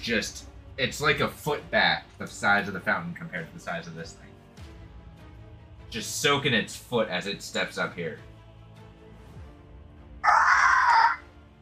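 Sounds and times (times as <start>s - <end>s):
speech: 0.0s - 4.3s, 5.9s - 8.3s
voice imitating a monster's chittering screech: 10.2s - 11.2s.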